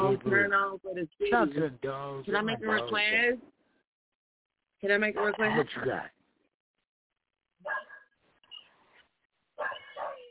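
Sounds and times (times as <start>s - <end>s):
speech: 0.1s - 3.5s, 4.8s - 6.1s
dog barking: 7.6s - 8.1s, 9.6s - 10.2s.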